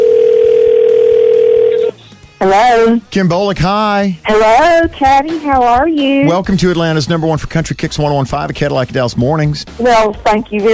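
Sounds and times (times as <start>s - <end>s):
telephone ringback tone on the caller's end: 0.0s - 2.1s
speech: 2.4s - 10.7s.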